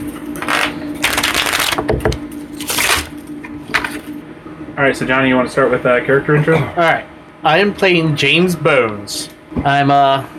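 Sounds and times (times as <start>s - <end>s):
playing cards being shuffled: 0.3s - 1.9s
speech: 4.8s - 10.3s.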